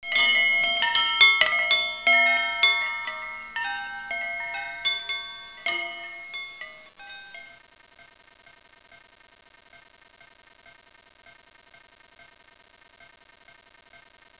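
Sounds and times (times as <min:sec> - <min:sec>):
chimes loop: 0:00.0 - 0:07.6.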